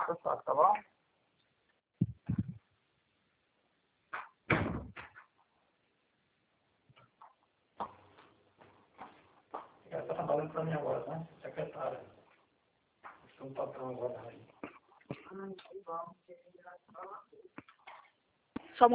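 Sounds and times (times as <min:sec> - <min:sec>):
speech: 0:00.1 - 0:01.0, 0:10.2 - 0:12.1, 0:13.4 - 0:14.5, 0:15.3 - 0:17.6, 0:18.8 - 0:18.9
knocks and bumps: 0:02.0 - 0:02.6
door closing with a sharp thud: 0:04.5 - 0:05.2.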